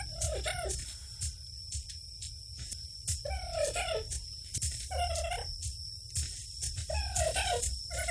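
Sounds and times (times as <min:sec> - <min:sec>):
imagined dodo call of hoarse gobbling bird cries: 0:00.0 - 0:00.8, 0:03.2 - 0:04.2, 0:04.9 - 0:05.5, 0:06.9 - 0:08.0
constant high insect-like drone: 0:00.0 - 0:08.0.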